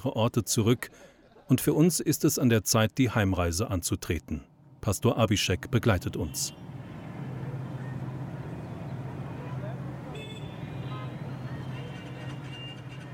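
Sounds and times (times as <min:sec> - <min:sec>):
speech: 0:00.0 - 0:06.8
traffic of cars, ox carts, tuk-tuks and motorcycles: 0:00.0 - 0:13.1
engine rumble and road noise from inside a moving car: 0:04.6 - 0:13.1
faint high-pitched horn-like tones: 0:09.4 - 0:13.1.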